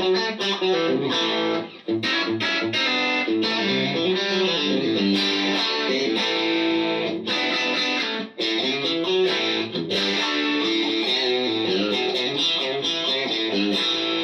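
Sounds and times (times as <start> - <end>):
twangy electric guitar with two noise-canceling single-coil pickups playing: 0.0 - 14.2.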